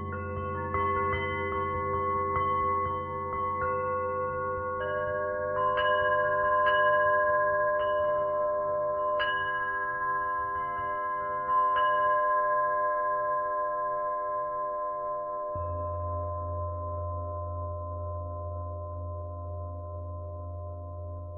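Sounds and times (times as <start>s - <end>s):
deeper singing bowl low pulsing drone: 0.0s - 6.6s, 15.4s - 21.3s
Tibetan singing bowls humming with sustained tones: 0.0s - 21.3s
bright metallic singing bowl strikes chiming: 0.0s - 21.3s.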